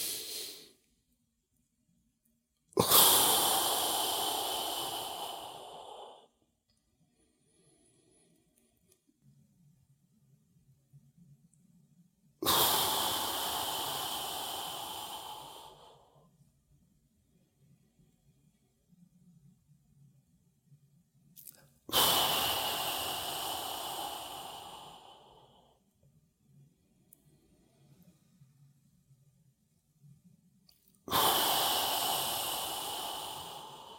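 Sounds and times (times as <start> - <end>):
forceful exhales blown around the tongue in a yogic breathing exercise: 0.0 - 0.8, 2.8 - 6.3, 12.4 - 16.2, 21.9 - 25.8, 31.1 - 33.9.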